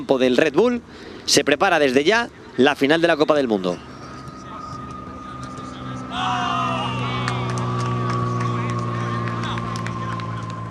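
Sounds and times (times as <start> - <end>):
speech: 0.0 - 3.9
aircraft passing overhead: 2.0 - 10.6
people shouting on a field: 6.1 - 7.6.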